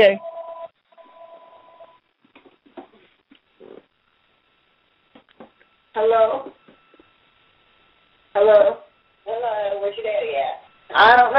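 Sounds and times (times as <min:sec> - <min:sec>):
speech: 0:00.0 - 0:00.3, 0:06.0 - 0:06.6, 0:08.4 - 0:11.3
telephone tone: 0:00.0 - 0:02.1.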